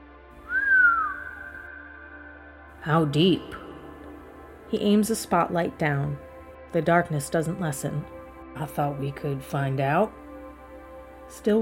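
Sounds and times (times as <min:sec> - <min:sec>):
low human whistle from a man leaning over: 0:00.4 - 0:02.5
speech: 0:02.8 - 0:03.6, 0:04.7 - 0:10.2, 0:11.3 - 0:11.5.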